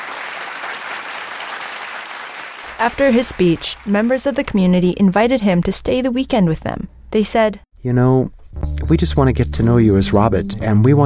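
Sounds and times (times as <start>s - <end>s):
sizable audience applauding after a speech from a pulpit: 0.0s - 4.2s
speech: 2.8s - 11.0s.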